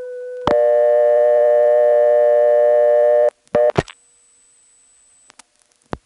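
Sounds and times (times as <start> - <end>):
telephone dial tone on phone line: 0.0 - 3.8.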